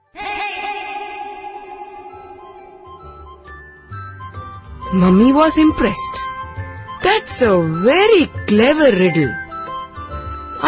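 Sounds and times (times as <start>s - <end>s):
bright sustained tonal cry with echo effect: 0.0s - 4.5s
speech: 4.9s - 6.3s, 7.2s - 9.4s.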